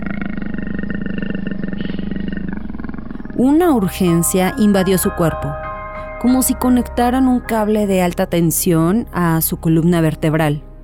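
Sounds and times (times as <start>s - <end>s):
tiger roaring: 0.0s - 3.4s
speech: 3.4s - 5.6s, 6.2s - 10.7s.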